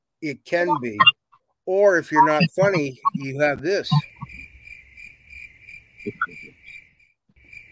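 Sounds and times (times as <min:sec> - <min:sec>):
speech: 0:00.2 - 0:04.1, 0:06.0 - 0:06.4
cricket chirping in rapid pulsed trills: 0:02.1 - 0:07.7.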